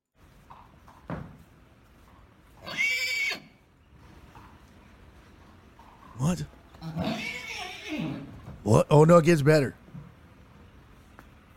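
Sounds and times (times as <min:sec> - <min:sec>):
speech: 0:06.2 - 0:07.0, 0:08.7 - 0:09.8
colt neighing: 0:06.8 - 0:08.4.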